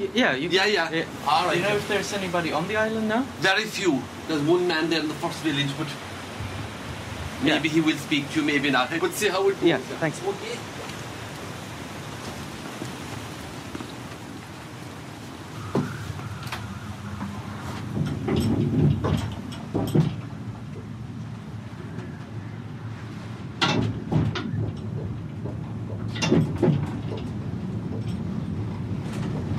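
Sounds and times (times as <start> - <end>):
speech: 0.0 - 6.1, 7.4 - 10.8
wind: 0.0 - 29.5
cable car mechanical rumble: 14.2 - 29.5
metallic clanks and rattles: 17.7 - 20.9, 23.6 - 29.5.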